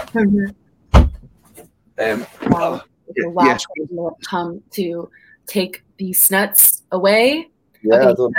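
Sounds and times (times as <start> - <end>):
speech: 0.1 - 0.6, 2.0 - 8.3
door opening with a low thunk: 0.9 - 1.4.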